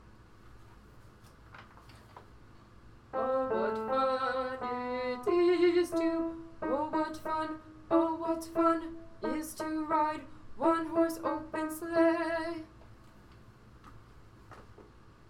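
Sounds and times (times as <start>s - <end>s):
alto voice singing: 3.2s - 12.7s.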